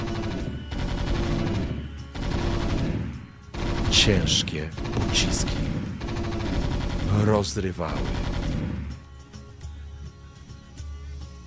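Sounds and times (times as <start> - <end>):
automatic gunfire in a sci-fi battle setting: 0.0 - 9.0
speech: 3.9 - 5.8, 7.2 - 8.4.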